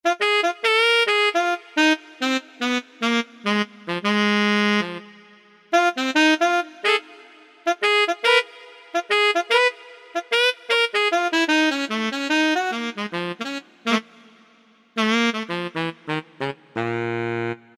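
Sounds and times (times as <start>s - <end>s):
saxophone: 0.0s - 17.7s.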